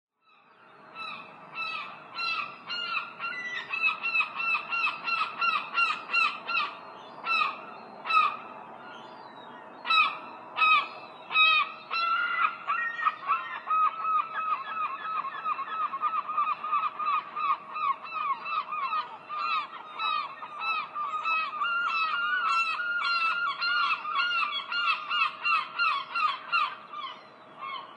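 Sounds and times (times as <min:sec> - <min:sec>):
herring gulls calling: 0:00.8 - 0:27.9.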